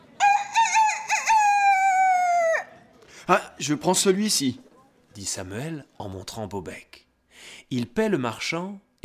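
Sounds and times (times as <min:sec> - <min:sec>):
rooster crowing: 0:00.2 - 0:02.8
speech: 0:03.3 - 0:09.0.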